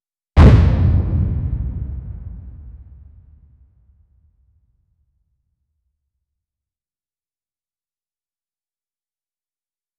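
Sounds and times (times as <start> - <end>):
dramatic boom sound effect: 0.4 - 3.6.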